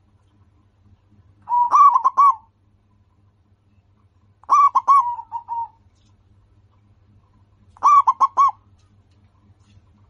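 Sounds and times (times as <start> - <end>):
local-strain zebra dove singing: 1.4 - 2.5, 4.4 - 5.8, 7.8 - 8.6.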